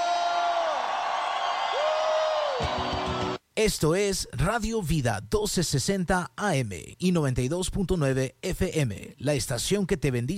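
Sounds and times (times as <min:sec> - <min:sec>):
crowd cheering: 0:00.0 - 0:03.4
speech: 0:03.6 - 0:10.3.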